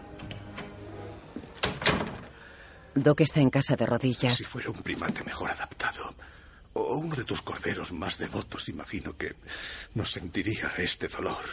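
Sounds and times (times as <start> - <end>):
door swinging shut: 0.1 - 2.4
door latch clunk: 1.5 - 2.3
speech: 3.0 - 6.2, 6.8 - 11.5.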